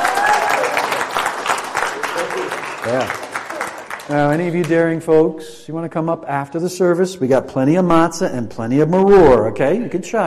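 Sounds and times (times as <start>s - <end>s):
audience clapping at a religious service: 0.0s - 5.0s
speech: 4.1s - 10.2s.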